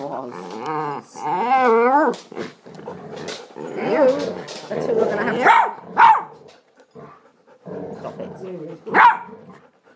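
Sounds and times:
dog growling while playing with its toy: 0.0s - 9.9s
speech: 0.1s - 2.5s
dog barking: 5.4s - 6.4s, 8.9s - 9.3s.

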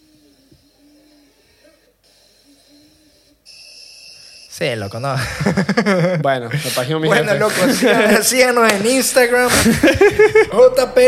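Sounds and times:
owl hooting: 0.0s - 5.0s
shrill constant high-pitched whine: 0.0s - 5.8s, 10.4s - 11.0s
steady hissing background: 0.0s - 7.0s
speech: 4.6s - 11.0s
laughter: 5.1s - 11.0s.

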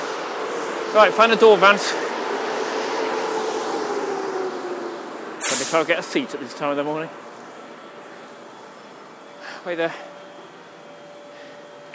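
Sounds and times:
train pulling in alongside a platform: 0.0s - 11.9s
speech: 0.9s - 2.1s, 5.7s - 7.2s, 9.6s - 10.1s
faint sustained tonal whine: 5.9s - 11.9s.

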